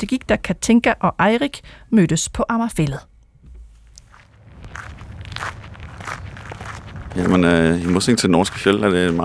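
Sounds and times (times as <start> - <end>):
speech: 0.0 - 3.1, 7.2 - 9.2
low outdoor rumble: 0.0 - 9.2
people walking on a flat gravel path on Amager Fælled: 4.0 - 9.2.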